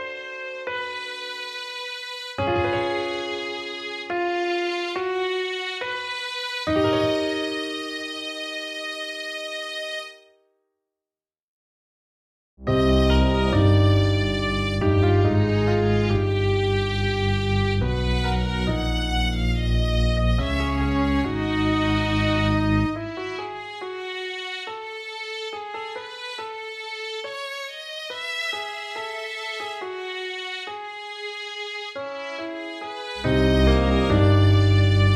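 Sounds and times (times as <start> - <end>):
cello: 0.4 - 10.2, 12.7 - 35.1.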